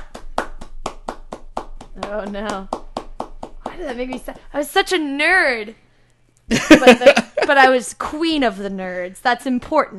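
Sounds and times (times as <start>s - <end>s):
hand claps in a short round of applause: 0.0s - 4.5s
speech: 2.0s - 2.8s, 3.8s - 5.8s, 6.5s - 9.9s
laughter: 6.5s - 7.7s.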